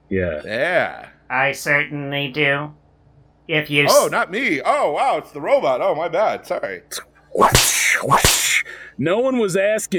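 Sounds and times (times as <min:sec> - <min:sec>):
speech: 0:00.1 - 0:02.8, 0:03.5 - 0:09.9
whip cracks: 0:07.4 - 0:08.6.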